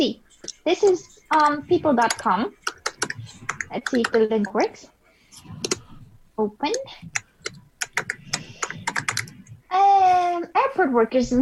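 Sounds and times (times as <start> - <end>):
speech: 0.0 - 2.6, 3.2 - 5.7, 6.4 - 7.2, 9.7 - 11.4
faint low murmuring: 0.3 - 10.4
rapid uneven typing on a computer keyboard: 1.3 - 4.3, 6.7 - 9.5.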